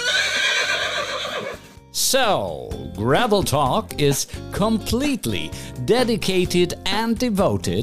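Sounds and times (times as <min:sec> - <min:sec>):
horse neighing: 0:00.0 - 0:01.7
speech: 0:02.0 - 0:07.8.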